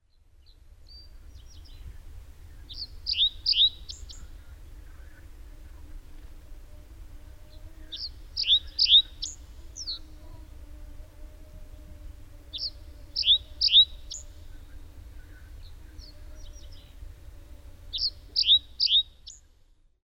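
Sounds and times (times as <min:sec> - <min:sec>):
reed bunting: 0:00.1 - 0:05.8, 0:07.4 - 0:10.4, 0:12.5 - 0:17.0, 0:17.9 - 0:19.6.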